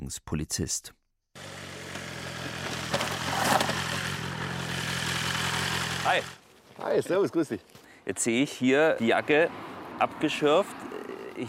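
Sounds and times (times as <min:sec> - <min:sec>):
speech: 0:00.1 - 0:01.0, 0:06.0 - 0:11.4
motorcycle of over 200 horsepower arriving, engine rumbling: 0:01.4 - 0:06.4.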